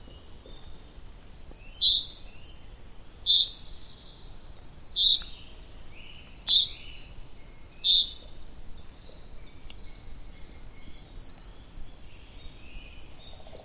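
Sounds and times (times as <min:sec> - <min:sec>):
faint hiss: 0:00.0 - 0:13.6
sharp high bird chirps: 0:01.8 - 0:02.2, 0:03.3 - 0:04.1, 0:05.0 - 0:05.4, 0:06.5 - 0:06.8, 0:07.8 - 0:08.3.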